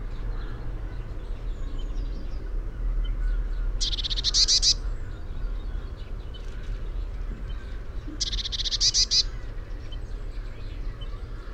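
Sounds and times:
low-pitched background noise: 0.0 - 11.5
Eurasian blue tit Cyanistes caeruleus buzzy churr: 3.8 - 4.8, 7.6 - 9.8.

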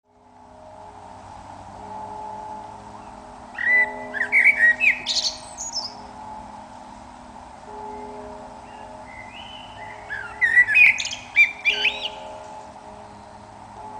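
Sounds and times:
steady low hum: 0.1 - 13.9
Eurasian blackbird song, Turdus merula: 2.9 - 6.2, 7.8 - 13.6.

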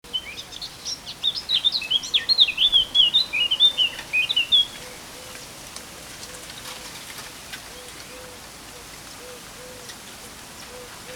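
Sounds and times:
Eurasian blackcap Sylvia atricapilla warbling song: 0.1 - 5.0
faint background hiss: 0.1 - 11.1.

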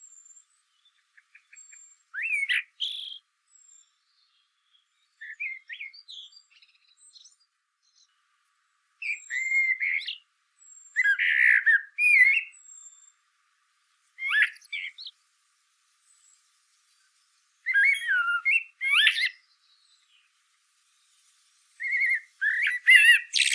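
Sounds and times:
common blackbird Turdus merula singing fluty warbling phrases: 0.0 - 8.1, 9.0 - 13.2, 14.2 - 15.2, 17.6 - 20.4, 21.8 - 23.5.

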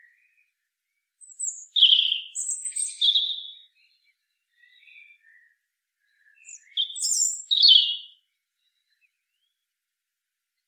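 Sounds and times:
European robin singing: 1.2 - 9.6.

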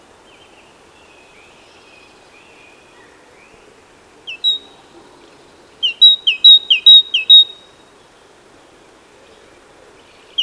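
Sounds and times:
Parus major great tit singing a high two-note phrase: 5.8 - 7.7.

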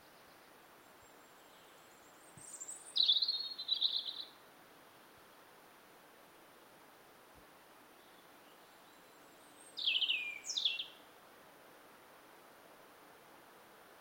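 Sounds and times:
European robin singing: 0.0 - 4.4, 8.0 - 11.0
faint background hiss: 0.0 - 13.9.

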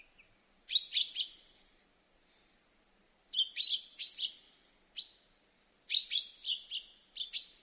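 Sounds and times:
common chaffinch Fringilla coelebs calling: 0.0 - 1.8, 2.8 - 5.2, 5.8 - 7.6.

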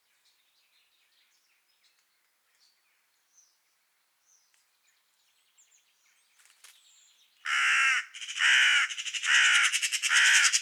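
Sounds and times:
carrion crow cawing: 7.5 - 10.6.

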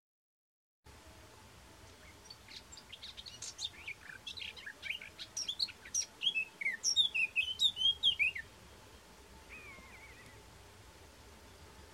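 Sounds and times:
faint steady background hiss: 0.9 - 11.9
Eurasian blackcap Sylvia atricapilla scratchy warble and fluty whistled song: 1.9 - 10.5.

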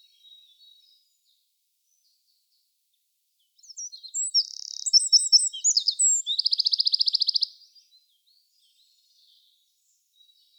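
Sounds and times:
Eurasian wren Troglodytes troglodytes singing: 3.6 - 7.6.

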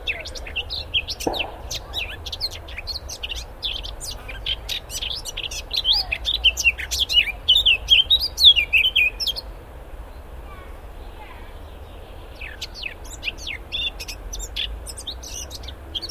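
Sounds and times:
Eurasian blackcap Sylvia atricapilla singing: 0.0 - 9.3.

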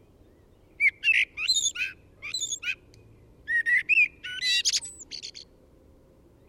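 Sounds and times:
Eurasian blackbird Turdus merula singing: 0.2 - 2.9, 3.5 - 5.5.

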